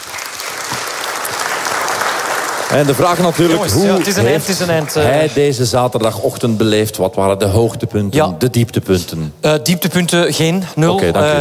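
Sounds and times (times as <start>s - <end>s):
group clapping in applause for a guest: 0.0s - 5.4s
speech: 2.7s - 11.3s.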